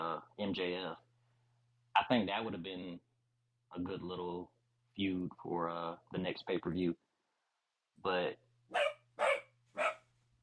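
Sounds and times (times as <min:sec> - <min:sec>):
speech: 0:00.3 - 0:01.1, 0:02.0 - 0:03.1, 0:03.7 - 0:07.0, 0:08.0 - 0:08.8
dog barking: 0:08.7 - 0:10.1.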